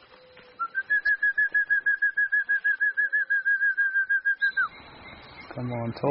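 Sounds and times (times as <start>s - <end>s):
bird giving a rapid run of identical whistled notes: 0.6s - 4.8s
speech: 5.6s - 6.0s.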